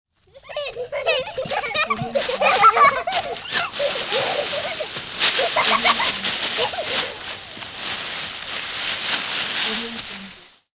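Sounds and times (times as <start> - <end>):
children laughing: 0.2 - 7.6
children playing in leaves: 0.2 - 10.7.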